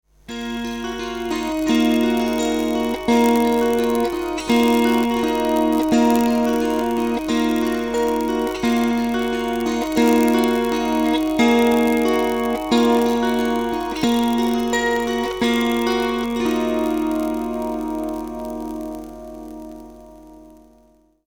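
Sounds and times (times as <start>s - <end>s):
melting string sound: 0.3s - 20.7s.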